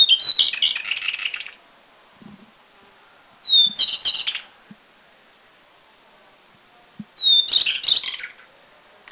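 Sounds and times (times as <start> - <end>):
White-browed shortwing song with high tumbling jumbled notes: 0.0 - 1.6, 3.4 - 4.6, 7.2 - 8.5.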